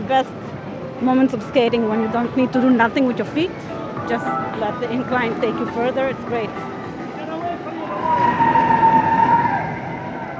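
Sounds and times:
road and wind noise: 0:00.0 - 0:10.3
speech: 0:00.1 - 0:06.8
car approaching under an overpass and slowing down: 0:03.8 - 0:10.3.

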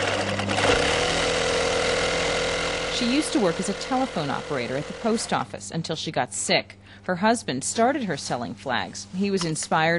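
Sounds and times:
sewing machine whirring as flags are stitched in a bedroom: 0:00.0 - 0:05.5
speech: 0:03.0 - 0:09.9.

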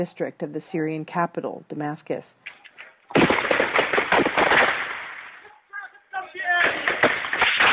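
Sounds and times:
speech: 0:00.0 - 0:02.6
gunshots fired at a street protest: 0:02.4 - 0:05.5, 0:06.4 - 0:07.7
people shouting at a street protest: 0:05.4 - 0:07.0.

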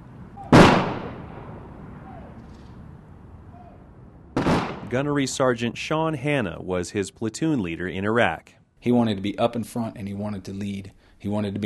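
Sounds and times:
rifle salute volley at a Marine funeral in Colorado Springs: 0:00.0 - 0:05.7
speech: 0:04.9 - 0:11.6.

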